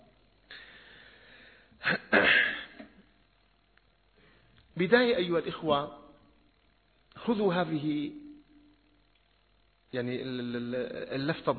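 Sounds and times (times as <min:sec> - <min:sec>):
person sneezing loudly: 0:01.8 - 0:02.9
speech: 0:04.8 - 0:06.0, 0:07.2 - 0:08.2, 0:09.9 - 0:11.5.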